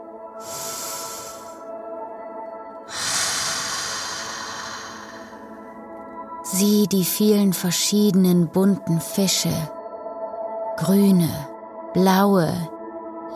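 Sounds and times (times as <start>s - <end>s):
slow deep breath in and out: 0.4s - 1.8s, 2.9s - 5.8s
speech: 6.5s - 9.8s, 10.8s - 13.3s.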